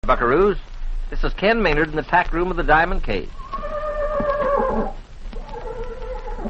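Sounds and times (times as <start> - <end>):
speech: 0.0 - 3.4
soft noise: 0.0 - 6.4
horse whinnying: 3.4 - 6.4.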